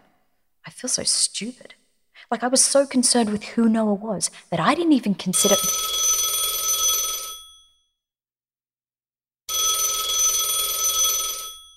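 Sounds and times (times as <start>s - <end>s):
speech: 0.8s - 5.9s
telephone ringing: 5.4s - 7.8s, 9.5s - 11.7s.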